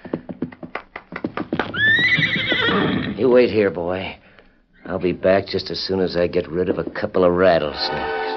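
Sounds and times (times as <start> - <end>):
horse hoofbeats: 0.0 - 3.0
horse whinnying: 1.7 - 3.2
speech: 3.2 - 4.2, 4.9 - 8.2.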